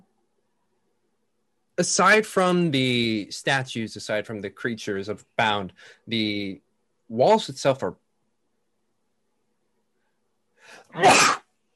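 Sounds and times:
speech: 1.8 - 8.0, 10.7 - 11.4
person sneezing: 10.8 - 11.5.

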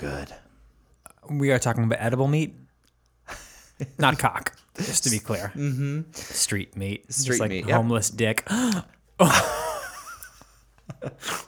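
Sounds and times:
speech: 0.0 - 0.4, 1.2 - 2.6, 3.3 - 9.6, 11.0 - 11.4
sharp breathy voiced gasp of shock: 8.5 - 8.9.

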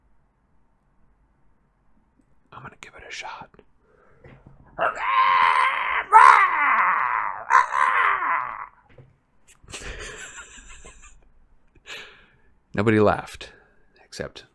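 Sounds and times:
speech: 2.8 - 6.5, 12.8 - 13.6, 14.2 - 14.5
human voice imitating a shrieking monstrous bird call: 4.8 - 8.8
laughter: 9.7 - 11.3.

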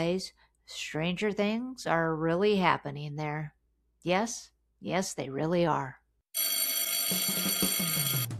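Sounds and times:
speech: 0.0 - 7.6
school dismissal bell ringing: 6.4 - 8.3.

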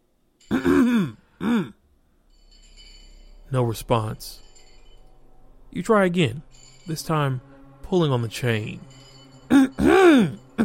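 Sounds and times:
person clearing throat: 0.5 - 1.8, 9.5 - 10.6
speech: 3.5 - 4.4, 5.8 - 9.0, 9.8 - 10.6.

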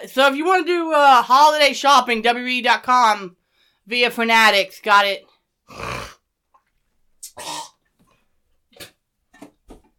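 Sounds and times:
speech: 0.1 - 5.9
person clearing phlegm from the throat: 5.7 - 6.2, 7.2 - 7.8.

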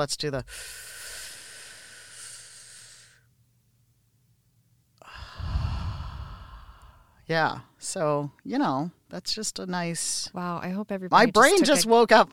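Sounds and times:
speech: 0.0 - 0.9, 7.3 - 12.3
slow deep cleansing breath in and out: 0.5 - 3.3, 5.0 - 7.2.

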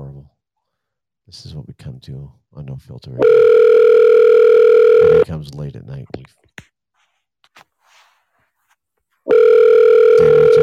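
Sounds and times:
speech: 1.3 - 4.0, 5.0 - 6.6
phone ringback tone while a call waits to be answered: 3.2 - 5.2, 9.3 - 10.6.

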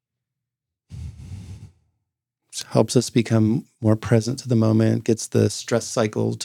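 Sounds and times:
cleansing breath exhale during a breathing exercise: 0.9 - 1.8
speech: 2.6 - 6.4.

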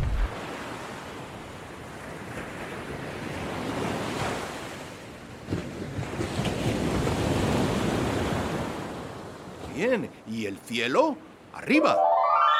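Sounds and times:
ocean surf crashing on shore: 0.1 - 12.5
speech: 9.8 - 12.1.

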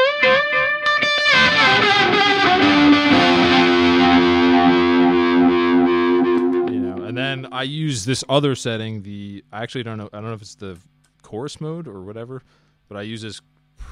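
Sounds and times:
distorted electric guitar through an effects pedal with a speed control: 0.0 - 7.8
speech: 7.6 - 13.9.

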